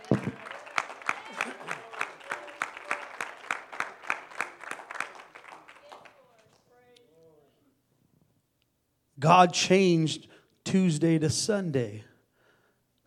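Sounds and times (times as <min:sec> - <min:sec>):
crowd clapping rhythmically in a large room: 0:00.0 - 0:06.7
speech: 0:09.2 - 0:12.1.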